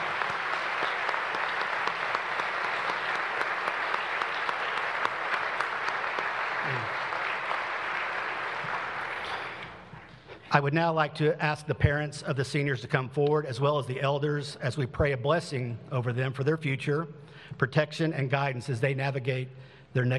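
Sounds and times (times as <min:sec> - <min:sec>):
large audience applauding graduates: 0:00.0 - 0:09.9
speech: 0:10.5 - 0:20.1.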